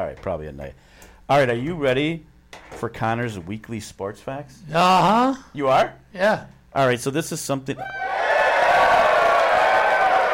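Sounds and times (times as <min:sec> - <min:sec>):
speech: 0:00.1 - 0:08.1
studio crowd of at least 400 people cheering and clapping: 0:07.8 - 0:10.3.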